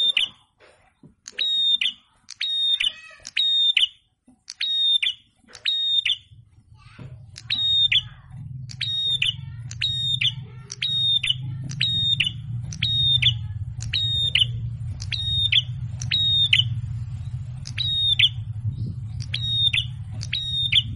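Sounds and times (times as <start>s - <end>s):
red-headed prenjak singing: 1.3s - 6.3s, 7.4s - 20.9s
low rumbling hum: 6.2s - 20.9s.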